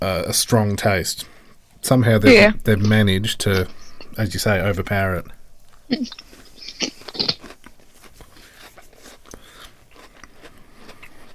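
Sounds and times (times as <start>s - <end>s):
speech: 0.1s - 7.3s
cream-filled biscuit crunching: 5.7s - 11.3s
chewing: 6.1s - 11.3s.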